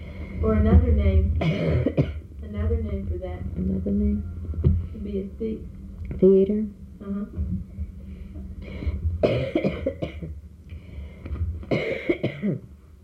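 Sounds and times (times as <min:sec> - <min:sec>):
low quiet breathing: 0:00.0 - 0:00.5, 0:08.0 - 0:09.2, 0:10.6 - 0:11.6
speech: 0:00.4 - 0:02.1, 0:03.4 - 0:07.7
person coughing and clearing throat: 0:01.4 - 0:02.2, 0:08.8 - 0:10.4, 0:11.7 - 0:12.7.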